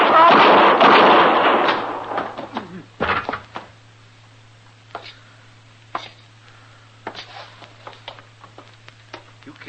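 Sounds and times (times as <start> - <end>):
gunshots: 0.0 - 2.4.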